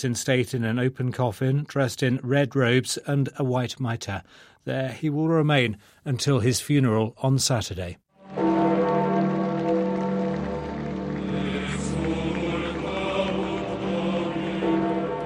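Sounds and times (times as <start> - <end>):
speech: 0.0 - 8.5
church bells pealing: 8.2 - 15.2.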